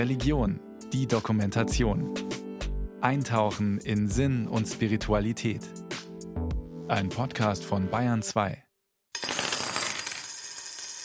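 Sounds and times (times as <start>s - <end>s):
speech: 0.0s - 2.4s, 3.0s - 5.8s, 6.9s - 8.6s
loose small change coins jingling and clinking: 9.2s - 11.0s.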